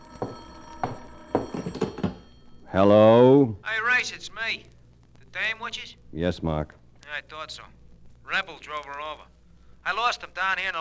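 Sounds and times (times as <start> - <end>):
telephone ringing: 0.0 - 5.8
speech: 2.7 - 4.8, 5.4 - 10.8.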